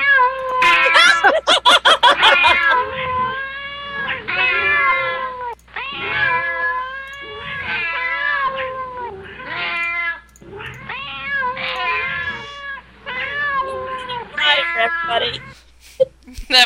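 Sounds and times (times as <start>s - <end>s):
laughter: 0.6s - 2.9s
several kittens meowing: 2.0s - 15.6s.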